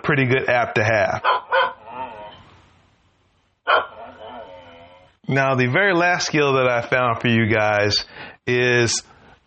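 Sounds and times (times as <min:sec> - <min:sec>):
speech: 0:00.1 - 0:01.6, 0:05.3 - 0:09.1
dog barking: 0:01.2 - 0:01.8, 0:03.7 - 0:04.6.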